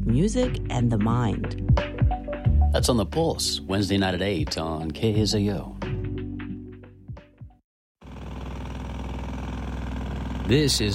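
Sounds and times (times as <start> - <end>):
speech: 0.1 - 2.0, 2.7 - 5.8, 10.5 - 10.9
diesel engine of heavy construction machinery rumbling and clanking: 8.0 - 10.9
jackhammers pounding at a construction site: 8.0 - 10.9.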